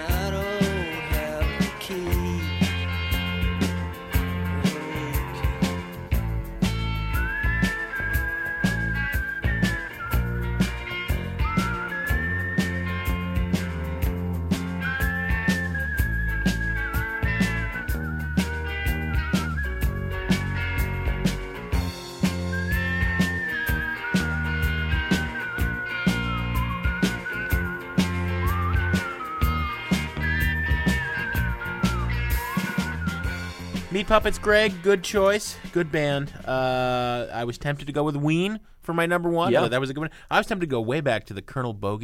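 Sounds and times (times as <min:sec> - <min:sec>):
person whistling a melody in a rock song: 0:00.0 - 0:13.8, 0:14.8 - 0:34.1, 0:39.4 - 0:39.7
full rock band with drums, bass and guitar: 0:00.0 - 0:37.1
speech: 0:34.1 - 0:42.0.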